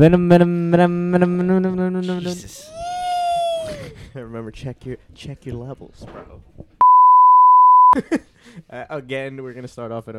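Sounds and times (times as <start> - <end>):
speech: 0.0 - 2.9, 3.7 - 6.7, 7.9 - 10.1
censor beep tone: 6.8 - 8.0.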